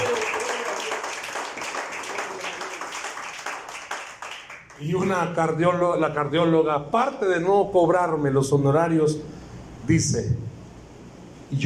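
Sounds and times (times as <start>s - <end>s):
audience applause: 0.0s - 4.8s
speech: 4.8s - 10.5s.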